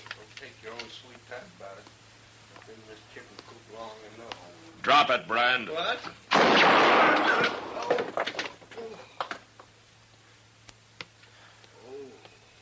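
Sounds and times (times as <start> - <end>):
speech: 1.0 - 2.0, 2.6 - 9.2
gunshot hitting a gun with metallic ring: 6.3 - 7.7
faint murmuring voice: 11.7 - 12.5.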